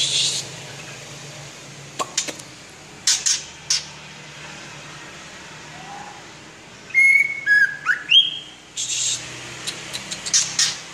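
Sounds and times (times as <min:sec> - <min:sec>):
White-rumped shama song: 0:06.9 - 0:08.5.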